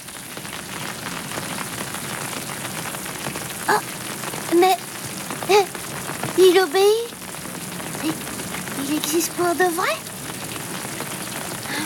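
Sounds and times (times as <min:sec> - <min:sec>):
gentle rain pattering on a surface: 0:00.0 - 0:11.8
speech: 0:03.7 - 0:03.9, 0:06.6 - 0:07.1, 0:09.0 - 0:10.2.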